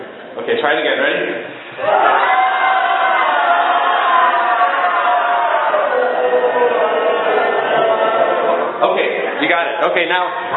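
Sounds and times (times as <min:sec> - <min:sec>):
speech: 0:00.5 - 0:02.3, 0:09.4 - 0:10.5
group of people shouting and roaring like a parade crowd: 0:01.8 - 0:09.4.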